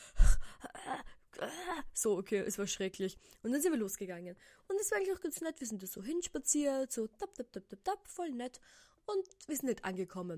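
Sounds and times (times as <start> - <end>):
person imitating labored gasping for breath during an asthma attack: 0.0 - 0.7
speech: 2.0 - 10.3.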